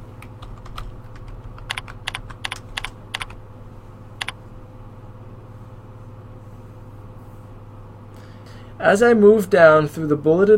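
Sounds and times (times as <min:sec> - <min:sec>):
typing on a computer keyboard: 0:00.4 - 0:03.4
speech: 0:08.8 - 0:10.5.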